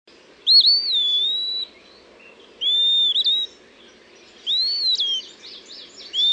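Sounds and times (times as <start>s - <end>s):
Eastern Wood-Pewee Contopus virens singing whistled phrases: 0.4s - 1.8s, 2.6s - 3.6s, 4.4s - 6.3s.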